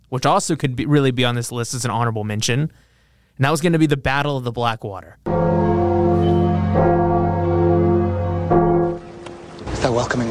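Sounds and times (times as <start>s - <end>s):
speech: 0.1s - 5.7s, 9.8s - 10.3s
church bells pealing: 5.3s - 10.0s.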